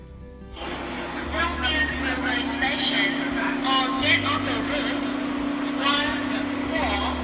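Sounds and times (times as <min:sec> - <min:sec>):
engine drone inside a moving bus: 0:00.5 - 0:07.2
onboard voice announcement in a moving bus: 0:00.6 - 0:07.2.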